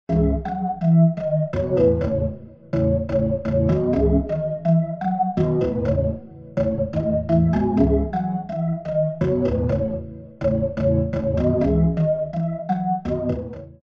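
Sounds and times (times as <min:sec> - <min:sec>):
organ through rotary speaker cabinet: 0:00.1 - 0:13.8.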